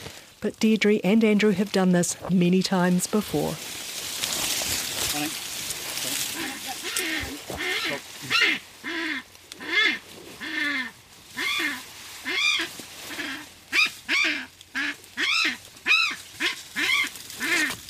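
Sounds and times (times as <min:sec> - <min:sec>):
rustling and bush noise in thick vegetation: 0:00.0 - 0:17.8
speech: 0:00.4 - 0:03.7
caught kākāpō skraaking in disapproval: 0:06.3 - 0:17.8.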